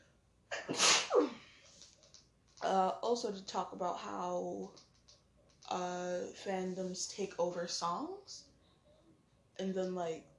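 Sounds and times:
single loud sneeze with sharp intake of breath: 0.5 - 1.4
speech: 2.7 - 4.9, 5.7 - 8.5, 9.6 - 10.3.

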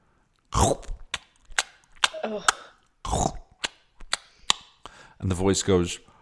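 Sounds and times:
wet crunchy squelchy chewing with bites and smacks: 0.4 - 4.7
speech: 0.6 - 0.9, 2.2 - 3.3, 5.2 - 6.1.

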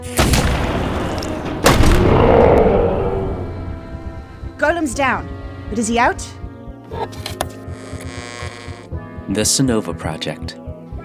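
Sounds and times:
cannon shot with long rumbling echo: 0.0 - 4.4
speech: 4.7 - 7.3, 9.3 - 10.6.

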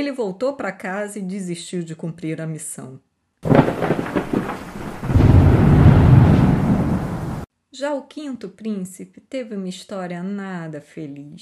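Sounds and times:
speech: 0.0 - 4.0, 7.8 - 11.4
heavy steady rain: 3.4 - 7.5
thunder: 3.4 - 7.5.

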